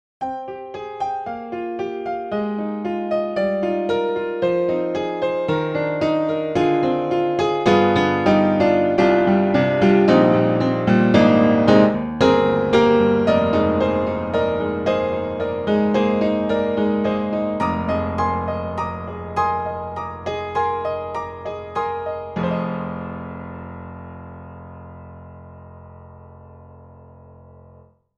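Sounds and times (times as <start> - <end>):
modern upright piano: 0.2 - 28.0.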